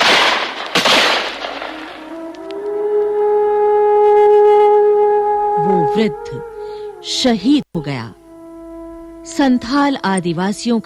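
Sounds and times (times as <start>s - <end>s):
burst of gunfire in a dramatized battle scene: 0.0s - 2.1s
sustained tonal drone: 1.4s - 10.8s
speech: 6.0s - 8.2s, 9.2s - 10.8s.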